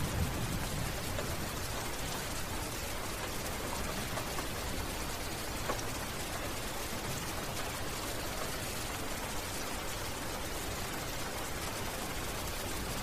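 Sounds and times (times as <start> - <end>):
medium-light rain pattering on an overcast day: 0.0 - 13.0.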